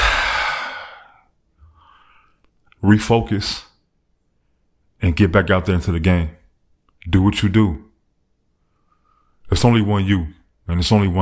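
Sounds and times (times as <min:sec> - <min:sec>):
person breathing out like a sigh: 0:00.0 - 0:02.4
speech: 0:02.8 - 0:03.7, 0:05.0 - 0:06.4, 0:07.0 - 0:07.8, 0:09.5 - 0:11.2.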